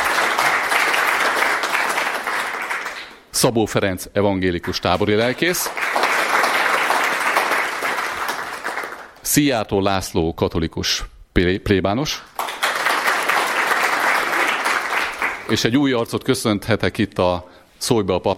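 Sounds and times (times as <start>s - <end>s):
sustained audience applause: 0.0s - 3.2s, 4.7s - 9.2s, 12.4s - 15.6s
speech: 3.4s - 6.0s, 9.3s - 12.3s, 15.5s - 18.3s.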